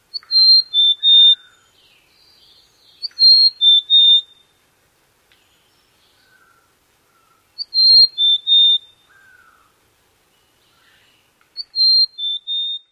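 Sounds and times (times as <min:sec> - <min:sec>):
mountain chickadee singing: 0:00.0 - 0:04.5, 0:07.6 - 0:09.2, 0:10.3 - 0:12.9.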